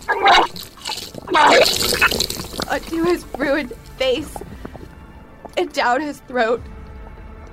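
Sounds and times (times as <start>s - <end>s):
wet gushing and splattering: 0.0s - 5.7s
speech: 2.9s - 4.5s, 5.6s - 6.7s.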